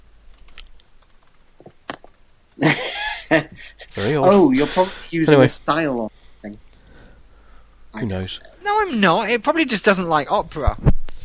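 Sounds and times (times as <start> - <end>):
typing on a computer keyboard: 0.3 - 2.7
laughter: 2.6 - 4.9
speech: 4.0 - 6.6, 8.0 - 10.9.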